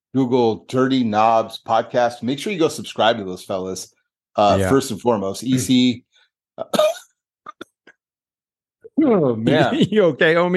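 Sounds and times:
speech: 0.1s - 7.0s, 9.0s - 10.5s
person getting over a cough coughing harshly: 6.6s - 7.9s.

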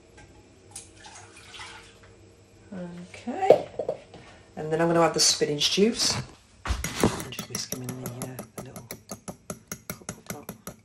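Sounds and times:
milk pouring into a saucepan while cooking: 1.0s - 2.0s
speech: 2.8s - 3.8s, 4.6s - 6.4s.

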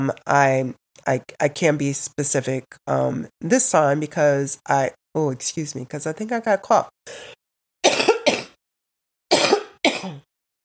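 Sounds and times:
speech: 0.0s - 7.4s, 9.8s - 10.3s
person coughing: 7.1s - 8.6s, 9.3s - 10.3s.

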